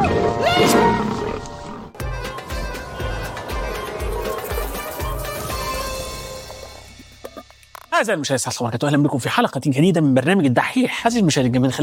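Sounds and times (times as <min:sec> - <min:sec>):
lion roaring: 0:00.0 - 0:02.0
upbeat music with a steady thumping beat: 0:02.0 - 0:08.0
speech: 0:08.0 - 0:11.8.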